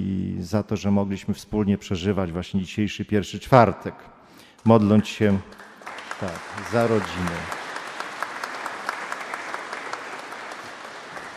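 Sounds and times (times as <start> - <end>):
speech: 0.0 - 7.6
room full of people clapping: 4.8 - 11.3.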